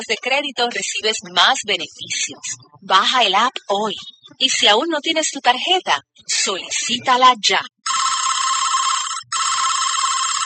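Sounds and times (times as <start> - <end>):
speech: 0.0 - 8.0
telephone ringing unanswered: 7.8 - 10.4.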